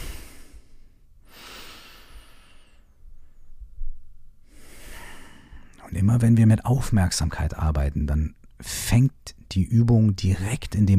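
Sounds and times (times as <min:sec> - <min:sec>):
deep breaths in and out during a guided breathing exercise: 0:00.0 - 0:03.5, 0:04.4 - 0:05.8
speech: 0:05.9 - 0:10.9.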